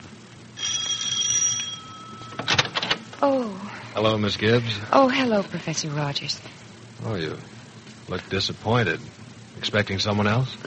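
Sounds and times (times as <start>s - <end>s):
doorbell ringing with a bright metallic tone: 0.6s - 2.8s
speech: 3.2s - 10.6s.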